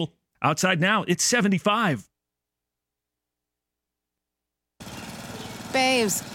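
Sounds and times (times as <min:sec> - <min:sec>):
speech: 0:00.0 - 0:02.1, 0:05.8 - 0:06.3
lawn mower engine running outdoors in hot dry weather: 0:04.8 - 0:06.3.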